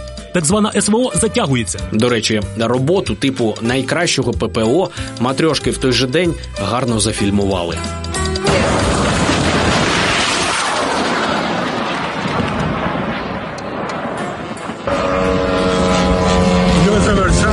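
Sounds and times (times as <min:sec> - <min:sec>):
speech: 0:00.4 - 0:08.8
dense crackling bursts of gunfire: 0:08.4 - 0:17.5
drone engine roaring past in Moscow while being shot at: 0:08.6 - 0:17.5
steady buzzing tone: 0:14.8 - 0:17.5.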